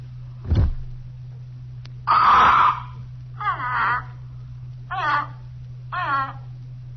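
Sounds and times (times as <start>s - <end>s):
steady low hum: 0.0s - 6.9s
soft thump of cloth pulled off a cage: 0.4s - 1.1s.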